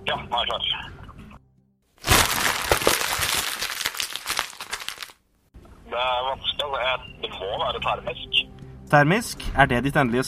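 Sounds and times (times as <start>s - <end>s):
speech: 0.1s - 1.0s, 6.0s - 10.2s
exam papers being crumpled up: 2.0s - 5.2s.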